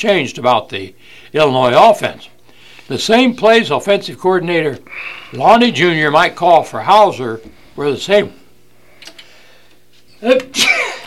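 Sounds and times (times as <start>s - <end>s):
speech: 0.0s - 8.4s, 10.2s - 11.0s
person sneezing: 10.5s - 11.0s.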